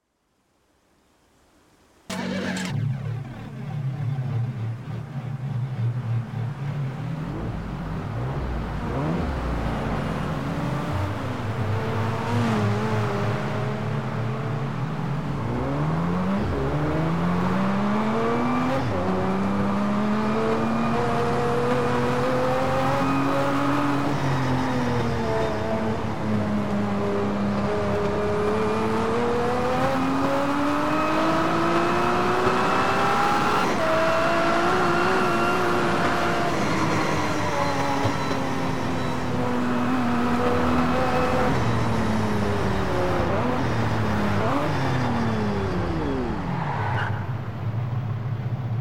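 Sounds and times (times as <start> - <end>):
Ferrari Enzo FXX engine: 2.1 - 48.7.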